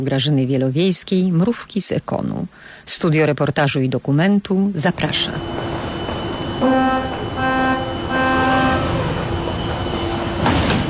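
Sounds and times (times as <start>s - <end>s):
speech: 0.0s - 5.6s
metro train rumbling through underground station: 4.9s - 10.8s
electric whining tones of metro train: 5.2s - 10.5s.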